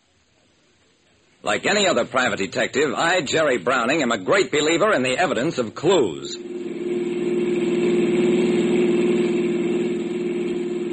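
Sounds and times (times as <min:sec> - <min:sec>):
speech: 0:01.4 - 0:06.5
car engine humming while driving: 0:06.4 - 0:10.9.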